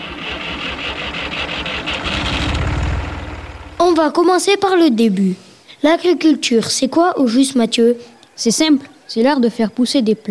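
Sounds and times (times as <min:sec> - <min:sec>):
tractor engine starting and chugging: 0:00.0 - 0:04.1
speech: 0:04.0 - 0:10.3.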